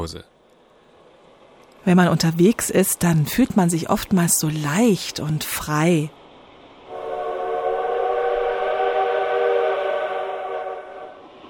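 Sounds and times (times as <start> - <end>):
speech: 0.0 - 0.4, 1.8 - 6.2
train whistle blast: 6.9 - 11.2.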